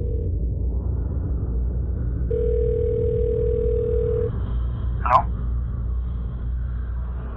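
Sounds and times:
telephone line tone: 0.0 - 0.3, 2.3 - 4.3
low rumbling background: 0.0 - 7.3.

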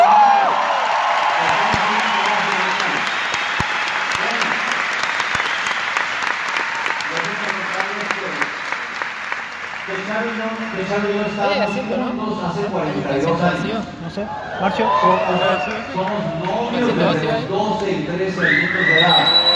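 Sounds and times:
large audience clapping loudly: 0.0 - 12.0, 15.5 - 17.2
speech: 11.0 - 19.4.

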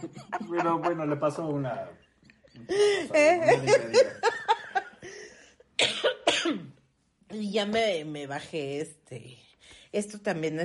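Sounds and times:
laughter: 0.0 - 1.9, 2.5 - 5.4
speech: 0.0 - 2.0, 2.6 - 4.4, 7.3 - 10.6
person coughing after laughing: 5.8 - 6.8.

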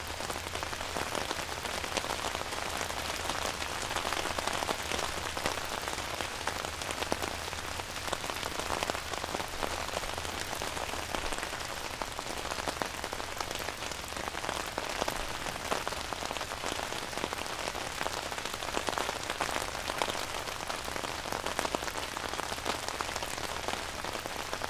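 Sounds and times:
soft rain pattering on an umbrella: 0.0 - 24.6.

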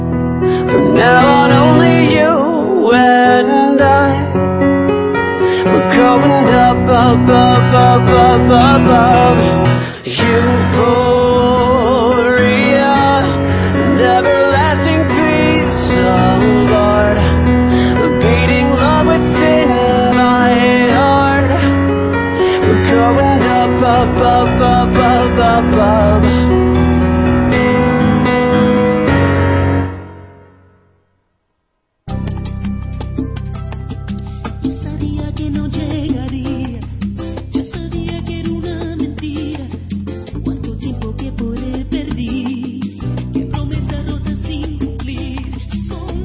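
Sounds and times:
steady acoustic accompaniment: 0.0 - 30.8, 32.1 - 46.2
young man singing acoustic pop song: 0.6 - 4.3, 5.7 - 17.4, 18.0 - 21.7, 22.6 - 26.4
speech: 6.0 - 11.0.

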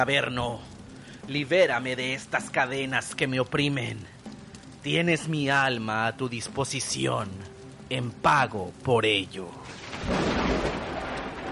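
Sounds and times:
speech: 0.0 - 0.7, 1.3 - 4.2, 4.8 - 10.3
deep roll of thunder with a heavy boom: 9.7 - 11.5.

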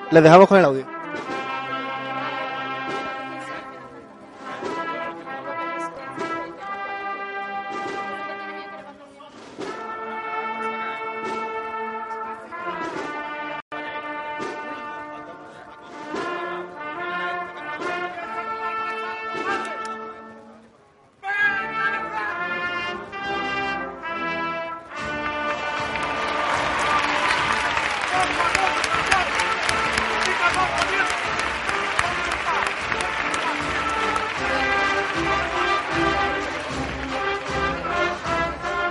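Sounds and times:
steady drum beats of processional march: 0.0 - 3.3, 4.4 - 5.0, 6.1 - 6.6, 7.7 - 8.2, 9.3 - 10.1, 11.1 - 11.7, 12.8 - 13.4, 14.4 - 14.8, 15.9 - 16.5, 24.9 - 38.8
brass band playing a slow solemn processional march in the streets of Jerez: 0.0 - 8.9, 9.6 - 20.5, 21.5 - 38.8
speech: 0.1 - 1.3.

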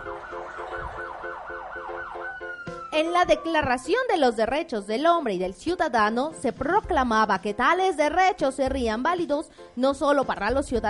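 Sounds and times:
police car siren yelping in rising-and-falling sweeps: 0.0 - 3.8
speech: 3.0 - 10.8.

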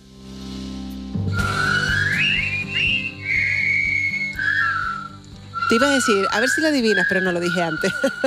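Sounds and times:
low steady musical backing: 0.0 - 8.2
jaunty whistled march melody: 1.2 - 8.2
speech: 5.7 - 8.2
laughter: 7.8 - 8.2.

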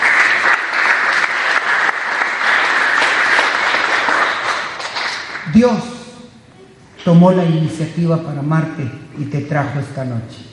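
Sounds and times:
audience applauding: 0.0 - 5.7
speech: 5.5 - 5.9, 7.0 - 10.5.

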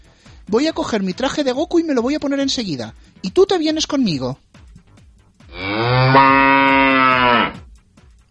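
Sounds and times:
speech: 0.5 - 4.4
cow mooing: 5.5 - 7.6.

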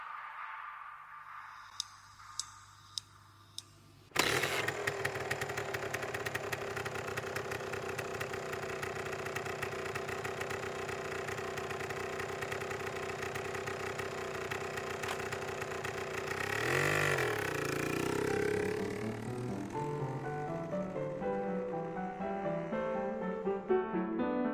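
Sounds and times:
motorcycle starter clicks: 1.6 - 7.5, 14.5 - 15.5
motorcycle engine starting and idling: 2.2 - 24.4.

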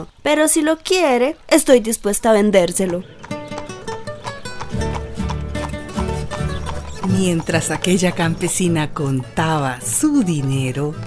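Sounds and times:
speech: 0.0 - 3.2, 7.1 - 11.0
horse trotting with hooves clip-clopping: 2.0 - 11.0
tuneful musical backing: 3.2 - 11.0.

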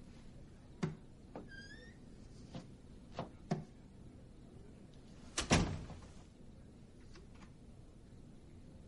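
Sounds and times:
soft creaks: 1.4 - 2.7
man pulling a room's door shut: 5.4 - 6.1.

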